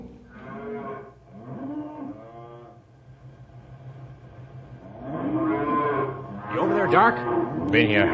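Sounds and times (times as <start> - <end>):
several cows mooing: 0.0 - 2.8, 4.9 - 8.1
speech: 6.9 - 8.1.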